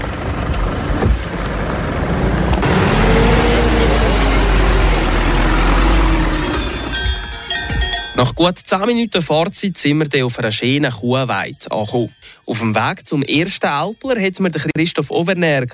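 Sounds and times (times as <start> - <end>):
car engine droning while driving up a mountain road to an alpine pasture: 0.0 - 7.9
road noise on a mountain road: 0.0 - 8.4
speech: 8.3 - 15.7.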